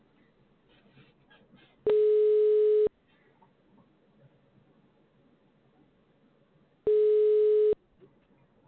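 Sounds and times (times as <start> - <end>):
telephone busy signal tones: 1.9 - 2.9, 6.9 - 7.8.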